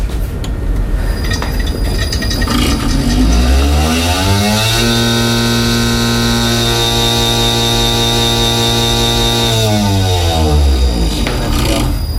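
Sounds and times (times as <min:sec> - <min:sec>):
lab shaker machine motor whine and hum: 0:00.1 - 0:12.1
lidded sample tube rattling in lab shaker: 0:01.0 - 0:03.5.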